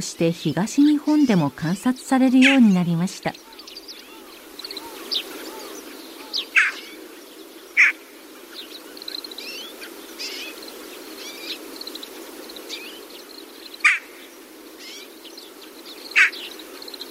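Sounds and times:
speech: 0.0 - 3.5
faint bird chirps and twitters: 0.0 - 17.1
Daurian jackdaw calls: 0.7 - 7.0, 7.8 - 8.0, 13.7 - 15.1, 16.0 - 16.6.

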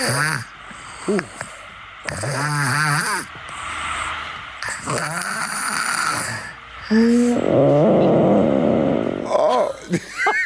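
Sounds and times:
toddler's short croaky gurgles: 0.0 - 0.5, 2.0 - 3.3, 4.6 - 9.8
2-year-old boy snoring: 0.0 - 1.4, 2.0 - 3.6, 4.6 - 9.5
speech: 0.0 - 3.5, 4.9 - 5.3, 6.9 - 8.1
laughter: 9.6 - 10.4.

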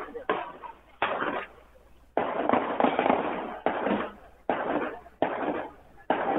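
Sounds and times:
gunshots during a shootout at an anniversary event in a memorial square: 0.2 - 1.6, 2.2 - 6.3.

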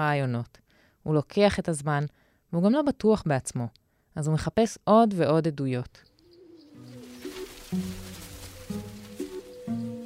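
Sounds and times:
speech: 0.0 - 6.1
pigeons cooing: 6.1 - 10.0.

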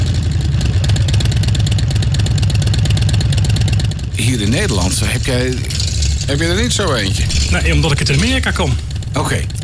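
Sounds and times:
motorcycle engine idling with a deep throbbing rumble: 0.0 - 9.6
speech: 4.2 - 9.6.

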